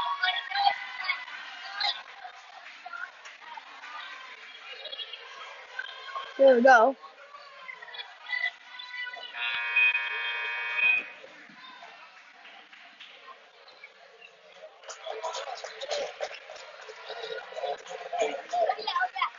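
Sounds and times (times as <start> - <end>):
crowd murmur and chatter in a gym: 0.0 - 19.3
speech: 6.4 - 7.1
arena buzzer blaring during a basketball game: 9.3 - 11.2.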